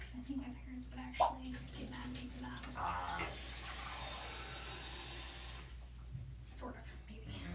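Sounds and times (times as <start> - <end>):
speech: 0.1 - 3.7, 6.6 - 7.4
water running while rinsing the side of a chest: 1.1 - 5.7.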